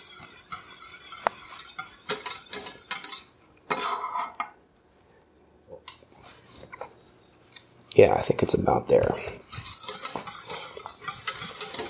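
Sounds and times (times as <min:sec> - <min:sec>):
stirring thick sauce in a pot: 0:00.0 - 0:04.5, 0:09.4 - 0:11.8
speech: 0:08.0 - 0:09.4.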